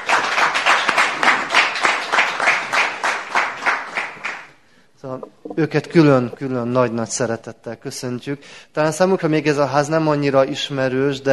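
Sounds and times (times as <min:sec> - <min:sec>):
audience applause at a diocese pastoral days gathering: 0:00.0 - 0:04.5
speech: 0:05.6 - 0:11.3.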